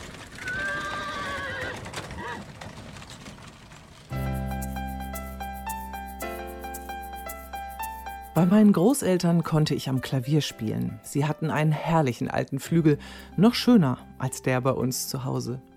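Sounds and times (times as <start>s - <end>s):
hooves clip-clopping from a horse-drawn carriage: 0.0s - 5.4s
horse whinnying: 0.4s - 2.6s
sustained melodic music: 4.1s - 15.7s
speech: 8.4s - 15.7s.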